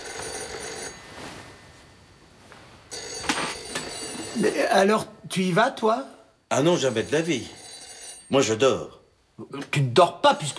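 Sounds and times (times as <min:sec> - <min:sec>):
old-fashioned telephone bell ringing: 0:00.0 - 0:01.3, 0:02.9 - 0:04.7, 0:06.5 - 0:09.0, 0:10.3 - 0:10.5
speech: 0:04.4 - 0:07.6, 0:08.3 - 0:10.5.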